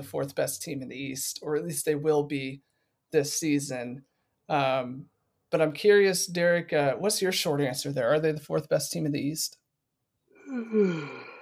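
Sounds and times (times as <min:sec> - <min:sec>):
speech: 0:00.0 - 0:09.6, 0:10.5 - 0:11.3
person yawning: 0:10.4 - 0:11.4.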